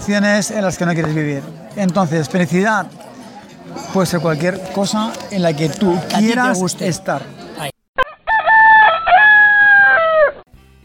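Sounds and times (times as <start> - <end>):
speech: 0.0 - 3.0, 3.7 - 7.7
rooster crowing: 8.0 - 10.4.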